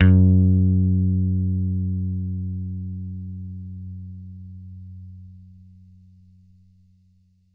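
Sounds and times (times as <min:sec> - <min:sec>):
bass F sharp 2 note picked: 0:00.0 - 0:06.0.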